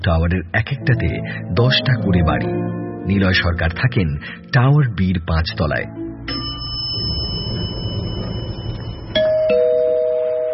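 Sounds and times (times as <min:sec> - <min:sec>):
speech: 0:00.0 - 0:06.4
low rumble: 0:05.4 - 0:09.4
electronic two-tone doorbell chime at a fifth-floor flat: 0:06.3 - 0:10.5.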